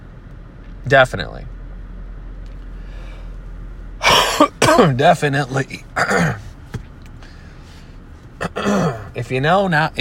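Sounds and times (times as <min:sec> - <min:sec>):
speech: 0:00.8 - 0:01.6, 0:04.8 - 0:06.4, 0:08.6 - 0:10.0
harsh dry cough from a dry throat: 0:04.0 - 0:05.0, 0:05.9 - 0:06.5, 0:08.4 - 0:09.1.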